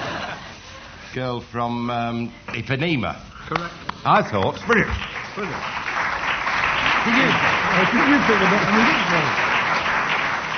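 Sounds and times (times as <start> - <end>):
speech: 1.2 - 5.8, 7.0 - 9.5
tumultuous audience applause: 4.5 - 10.5.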